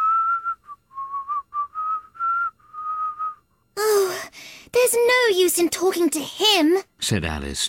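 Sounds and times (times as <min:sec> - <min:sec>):
person whistling a short wandering tune: 0:00.0 - 0:03.4
speech: 0:04.8 - 0:07.6.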